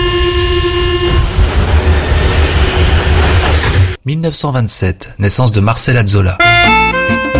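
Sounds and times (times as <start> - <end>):
steady horn-like tone of Paris metro train: 0.0 - 1.9
Paris metro train wheels rumbling and clattering on rails: 0.0 - 4.0
speech: 4.1 - 7.3.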